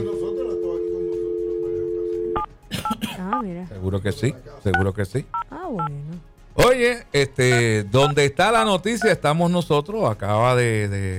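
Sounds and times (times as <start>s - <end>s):
telephone line tone while calling someone: 0.0s - 2.5s
speech: 3.3s - 11.1s
higher double-pitched telephone beep: 7.5s - 8.2s.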